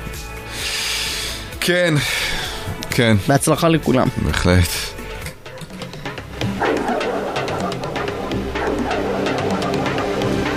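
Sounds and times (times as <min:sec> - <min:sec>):
steady rumbling background: 0:01.4 - 0:10.5
speech: 0:01.6 - 0:02.4, 0:03.0 - 0:04.9
several dogs barking in an overlapping chorus: 0:05.4 - 0:10.5.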